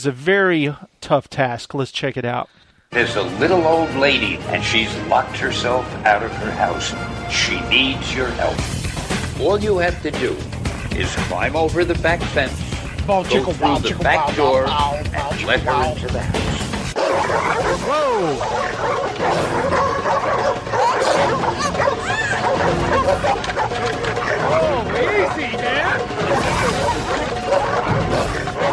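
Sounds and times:
speech: 0.0s - 8.8s, 9.4s - 19.8s
dogs barking in a backyard behind a fence: 10.2s - 28.7s
people talking and shouting: 11.0s - 28.7s
dogs yipping and whimpering: 16.9s - 28.7s.

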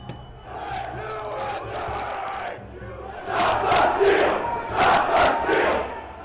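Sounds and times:
large rioting crowd shouting inside the Capitol rotunda: 0.4s - 6.2s.

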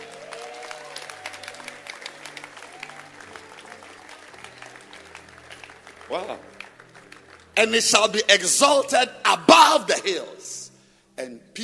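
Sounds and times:
crowd clapping hands in dense rapid applause: 0.0s - 8.1s
speech: 6.1s - 6.6s, 7.6s - 10.6s.

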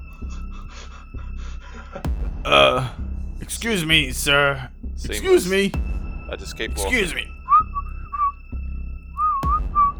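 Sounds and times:
speech: 2.0s - 7.3s
person whistling a tune: 7.5s - 8.4s, 9.2s - 9.9s.

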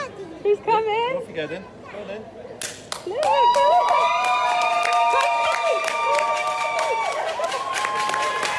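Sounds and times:
speech: 0.4s - 4.1s
steady, rapid clapping at an airport: 2.6s - 8.5s
crowd cheering at airport arrival: 3.0s - 8.5s
sustained high shouts and whoops at an airport: 3.0s - 8.5s.

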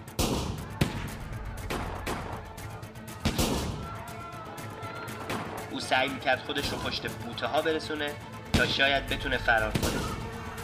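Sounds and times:
volley of gunshots: 0.1s - 2.6s, 3.2s - 3.9s, 9.6s - 10.6s
speech: 5.8s - 10.1s.

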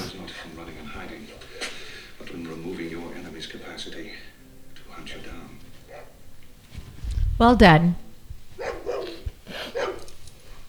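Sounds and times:
speech: 1.0s - 1.5s, 2.4s - 4.4s, 5.0s - 6.1s, 7.4s - 8.0s
puppy yipping and barking: 8.6s - 10.1s.

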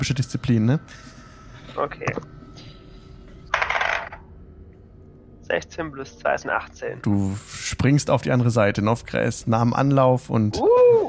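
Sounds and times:
speech: 0.0s - 1.2s, 1.8s - 2.4s, 5.5s - 11.0s
twenty-sided die clattering across a hard tabletop: 3.5s - 4.2s.

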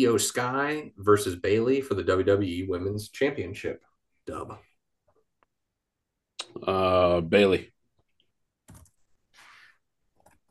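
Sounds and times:
speech: 0.0s - 4.7s, 6.6s - 7.7s
computer keyboard typing: 8.7s - 9.1s.

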